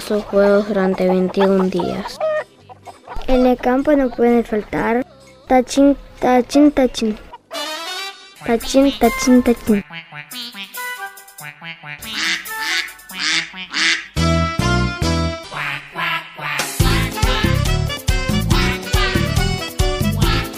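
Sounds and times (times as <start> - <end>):
speech: 0.1 - 2.2, 3.3 - 7.3, 8.4 - 10.4
duck quacking: 0.6 - 3.6, 7.3 - 14.4, 15.4 - 17.7, 18.5 - 19.5
bouncy musical backing with steady bass: 7.6 - 15.9, 16.5 - 20.5.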